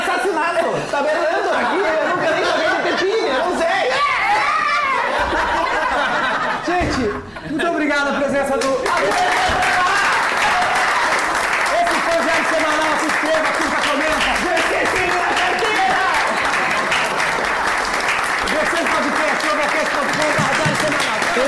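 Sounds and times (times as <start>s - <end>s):
laughter: 0.5s - 21.4s
people cheering: 3.6s - 6.6s, 8.6s - 21.4s
large audience applauding: 8.6s - 21.4s.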